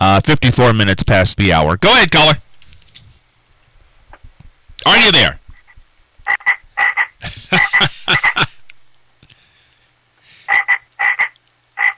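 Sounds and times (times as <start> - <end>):
speech: 0.1 - 2.4, 4.8 - 5.4, 7.2 - 8.4
frog croaking in rapid raspy bursts: 4.1 - 8.5, 10.5 - 11.9
laughter: 7.2 - 8.9.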